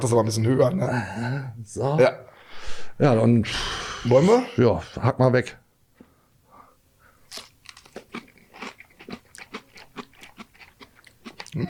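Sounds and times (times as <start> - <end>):
speech: 0.0 - 5.6
crunchy chewing while eating: 7.3 - 11.6.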